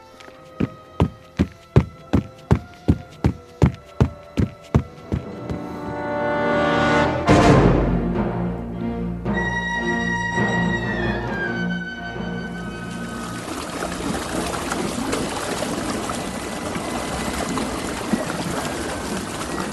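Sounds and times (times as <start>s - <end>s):
musical drone: 0.0s - 19.6s
heavy running footsteps of a deputy running toward a river: 0.2s - 6.1s.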